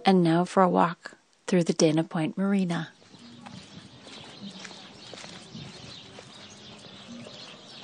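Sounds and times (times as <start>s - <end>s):
speech: 0.1s - 2.9s
many little birds chirping and twittering in a tree along a walkway: 1.7s - 7.8s.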